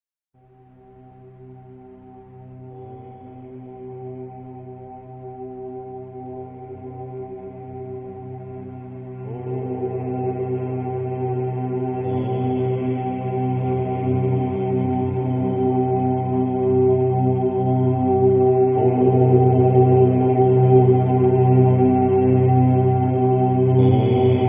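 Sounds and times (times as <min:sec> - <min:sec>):
om chant: 0:05.2 - 0:24.4.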